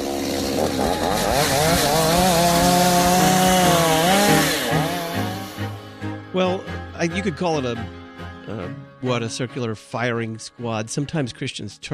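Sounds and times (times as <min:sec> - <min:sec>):
chainsaw engine revving up and down: 0:00.0 - 0:06.1
speech: 0:07.0 - 0:11.9.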